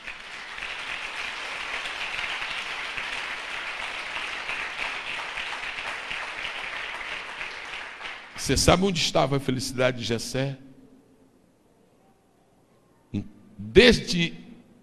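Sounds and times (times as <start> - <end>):
audience in a church applauding: 0.0 - 8.4
speech: 8.5 - 10.6, 13.2 - 14.4.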